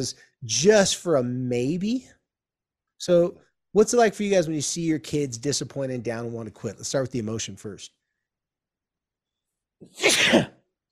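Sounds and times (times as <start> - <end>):
speech: 0.0 - 2.2, 3.0 - 8.0, 9.8 - 10.6
person sneezing: 9.8 - 10.6.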